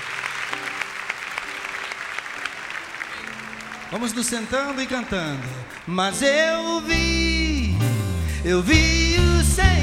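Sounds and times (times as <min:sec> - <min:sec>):
church congregation applauding: 0:00.0 - 0:07.1
speech: 0:03.9 - 0:07.4, 0:08.4 - 0:09.7.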